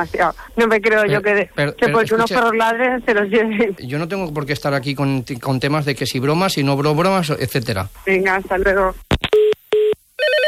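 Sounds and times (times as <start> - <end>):
speech: 0.0 - 9.2
telephone ringing with an incoming call: 9.4 - 10.4.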